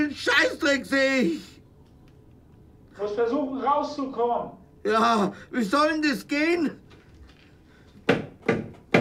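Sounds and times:
speech: 0.1s - 1.5s, 3.0s - 6.8s
firm knocks on a door: 8.0s - 9.0s.

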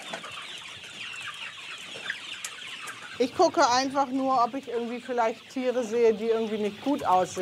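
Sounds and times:
chickens clucking inside a barn: 0.0s - 7.4s
speech: 3.2s - 7.4s.

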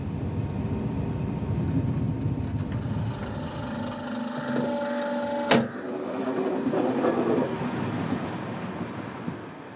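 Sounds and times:
train rolling into station at Drentwede: 0.0s - 9.7s
faint squealing tones of slowing train: 2.8s - 5.9s.

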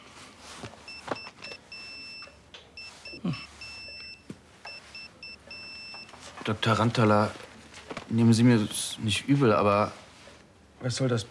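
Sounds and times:
soft rustling and handling noises: 0.0s - 11.2s
high thin electronic alarm from a patient monitor on a tablet: 0.9s - 6.2s
speech: 6.4s - 7.4s, 8.1s - 10.0s, 10.8s - 11.2s.

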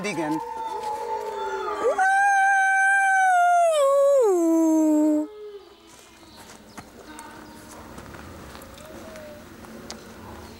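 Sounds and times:
speech: 0.0s - 0.6s
wolf howling: 0.3s - 5.7s, 8.5s - 9.6s.

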